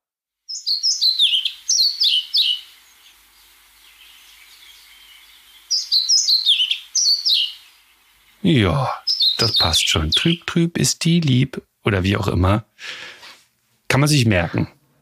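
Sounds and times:
black-and-white songbird singing: 0:00.4 - 0:11.3
speech: 0:00.7 - 0:02.3, 0:08.4 - 0:13.1, 0:13.9 - 0:14.8.

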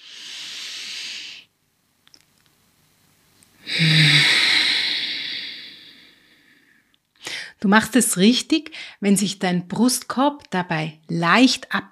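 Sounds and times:
airy nasal breathing during a breathing exercise: 0:00.0 - 0:01.5, 0:03.6 - 0:07.5
speech: 0:07.6 - 0:11.8.

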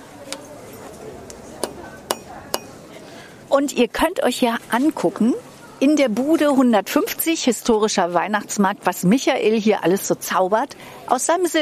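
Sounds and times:
chatter: 0:00.0 - 0:11.6
rubber mallet hammering silver jewelry: 0:01.6 - 0:02.8
speech: 0:03.6 - 0:11.6.

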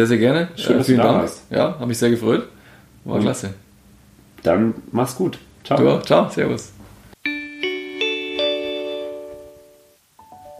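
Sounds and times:
speech: 0:00.0 - 0:03.6, 0:04.4 - 0:06.8
softer two-note chime: 0:07.2 - 0:10.5.

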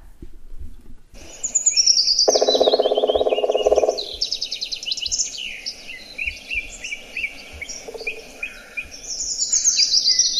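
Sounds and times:
Black Woodpecker drumming: 0:01.2 - 0:05.4, 0:06.2 - 0:09.0
chorus of songbird song: 0:01.2 - 0:10.3.

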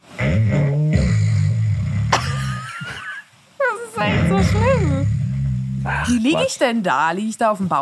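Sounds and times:
voice imitating snoring: 0:00.2 - 0:02.6, 0:04.0 - 0:06.5
speech: 0:04.0 - 0:04.8, 0:06.0 - 0:07.8.

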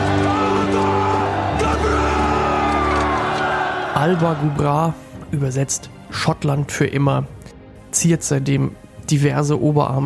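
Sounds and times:
person bellowing a Scottish battle cry from a film: 0:00.0 - 0:03.1
rough crowd-like roar: 0:00.0 - 0:04.6
speech: 0:04.1 - 0:10.0.

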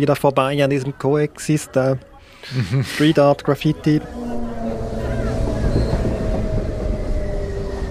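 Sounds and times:
speech: 0:00.0 - 0:04.4
laughter: 0:02.4 - 0:03.3
low droning hum: 0:03.3 - 0:07.8
train rolling along rails: 0:03.4 - 0:07.8.

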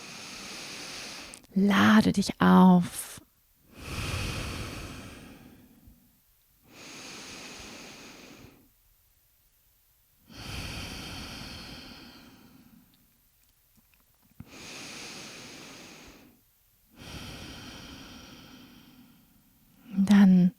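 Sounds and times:
slow breathing exercise with deep inhales and long exhales: 0:00.0 - 0:01.5, 0:03.7 - 0:06.0, 0:06.7 - 0:08.7, 0:10.3 - 0:13.0, 0:14.4 - 0:19.9
speech: 0:01.6 - 0:03.0.

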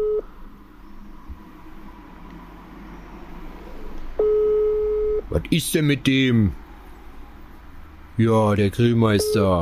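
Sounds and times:
telephone tone from an unanswered call: 0:00.0 - 0:00.3, 0:04.2 - 0:05.3, 0:09.2 - 0:09.6
low constant hum: 0:00.0 - 0:09.6
speech: 0:05.4 - 0:06.6, 0:08.2 - 0:09.6.

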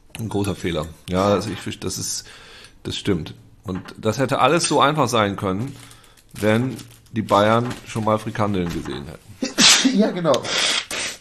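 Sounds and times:
speech: 0:00.2 - 0:10.7
breathy sneeze: 0:09.4 - 0:11.1
short puff of breath: 0:10.4 - 0:11.1.

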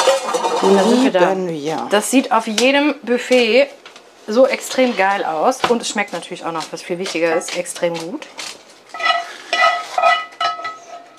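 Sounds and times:
scraping fruit juice and meat residue out of a frying pan: 0:00.0 - 0:01.5, 0:04.3 - 0:11.1
speech: 0:00.6 - 0:08.6.

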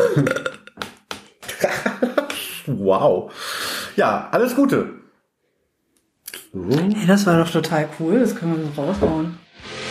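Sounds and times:
person burping: 0:00.0 - 0:00.8
speech: 0:00.2 - 0:00.5, 0:02.8 - 0:05.0, 0:06.5 - 0:09.7
laughter: 0:01.4 - 0:02.7.

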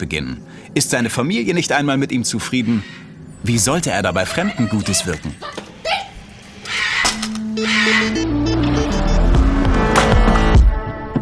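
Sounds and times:
speech: 0:00.0 - 0:05.5
busy street traffic engines revving and droning: 0:02.5 - 0:10.6.

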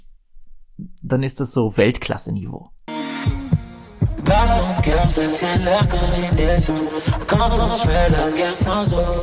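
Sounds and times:
speech: 0:01.1 - 0:03.4, 0:04.3 - 0:09.2
dense music beat with layered synths and harmonic instrumentation: 0:02.9 - 0:09.2
heartbeat pulse with low double thuds: 0:03.3 - 0:09.2.

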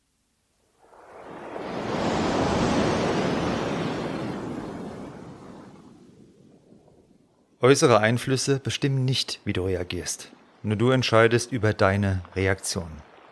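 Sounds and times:
ocean surf wave breaking: 0:00.8 - 0:07.2
speech: 0:07.6 - 0:13.1.

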